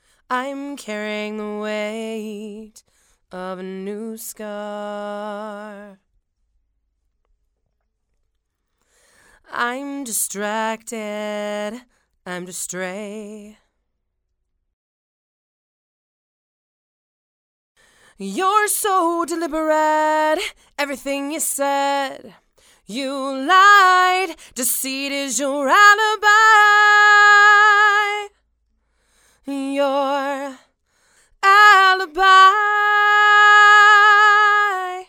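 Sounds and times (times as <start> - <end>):
woman singing: 0.3 - 6.0, 9.4 - 13.6, 18.1 - 28.4, 29.4 - 30.7, 31.3 - 35.0.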